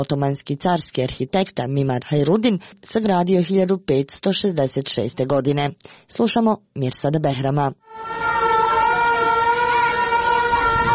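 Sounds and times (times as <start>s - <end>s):
speech: 0.0s - 8.3s
general danger air-raid siren wailing in Bosnia and Herzegovina: 7.8s - 10.9s.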